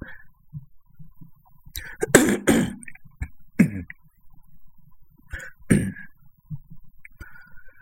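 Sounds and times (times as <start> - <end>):
quiet breathing: 0.0 - 0.4, 5.3 - 6.2, 7.2 - 7.7
harsh raspy throat clearing: 1.8 - 2.9, 3.6 - 3.9, 5.7 - 6.0.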